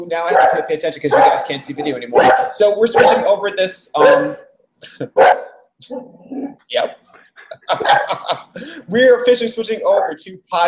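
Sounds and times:
speech: 0.0s - 10.6s
puppy barking in high-pitched yaps: 0.2s - 3.4s, 4.0s - 4.5s, 5.2s - 6.1s
laughter: 7.2s - 8.8s.

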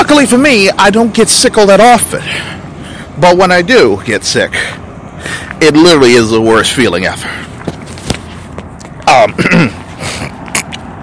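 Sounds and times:
speech: 0.1s - 2.6s, 3.2s - 7.5s, 9.1s - 10.2s
throat clearing with phlegm: 9.2s - 10.3s.

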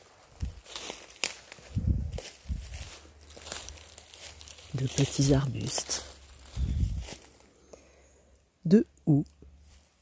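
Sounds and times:
footsteps crunching on dry dead leaves and small twigs in a forest: 0.0s - 7.6s
speech: 4.8s - 6.0s, 8.7s - 9.3s.

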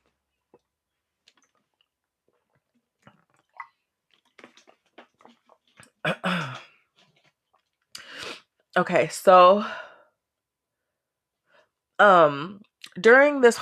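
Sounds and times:
small swallowing sounds: 0.5s - 7.8s
sipping water: 1.3s - 8.4s
speech: 8.8s - 9.8s, 12.0s - 13.6s.

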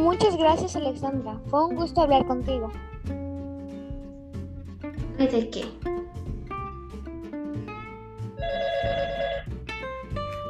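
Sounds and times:
bright melodic music: 0.0s - 10.4s
speech: 0.2s - 3.2s, 5.2s - 6.2s
telephone bell ringing with an incoming call: 8.4s - 9.5s.

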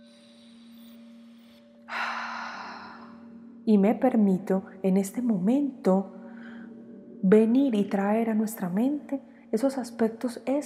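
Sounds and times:
deep breath during a guided meditation: 0.1s - 3.4s, 6.2s - 6.9s
speech: 3.7s - 6.2s, 7.2s - 10.6s.

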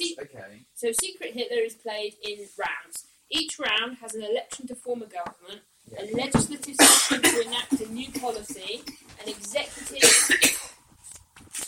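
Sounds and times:
speech: 0.4s - 10.7s
harsh rough coughing: 6.8s - 9.1s, 9.8s - 10.8s.

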